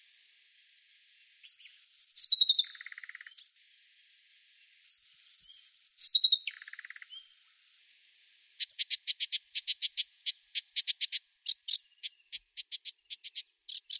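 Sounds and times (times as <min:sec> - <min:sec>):
brown thornbill warbled song in a garden in Canberra Australia: 0:01.4 - 0:03.6, 0:04.8 - 0:07.3, 0:08.6 - 0:13.9.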